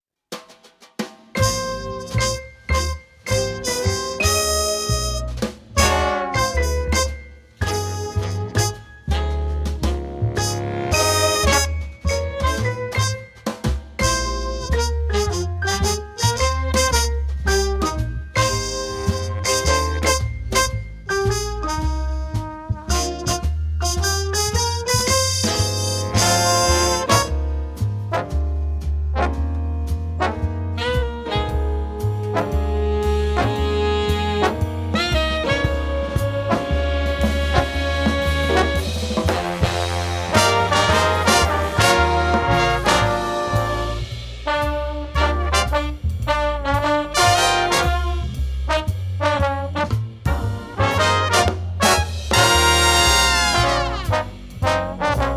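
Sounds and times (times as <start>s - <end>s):
jazz fight song: 0.3s - 55.3s.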